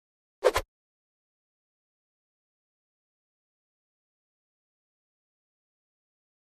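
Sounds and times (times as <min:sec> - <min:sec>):
fencing sword swish: 0:00.4 - 0:00.6.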